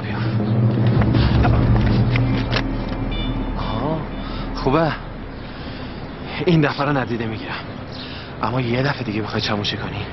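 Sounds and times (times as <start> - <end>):
car engine starting and rumbling: 0.1 - 6.3
speech: 4.7 - 5.0, 6.4 - 7.7, 8.4 - 10.1.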